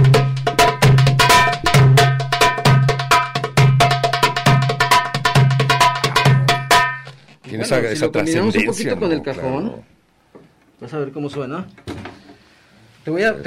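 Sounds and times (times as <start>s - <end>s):
darbuka goblet drum playing a driving rhythm: 0.0s - 7.2s
speech: 7.7s - 10.0s, 10.8s - 12.1s, 13.0s - 13.4s.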